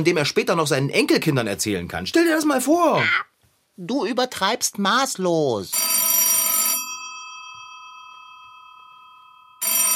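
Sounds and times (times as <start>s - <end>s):
speech: 0.0s - 6.2s
old-style telephone bell ringing: 5.7s - 9.9s.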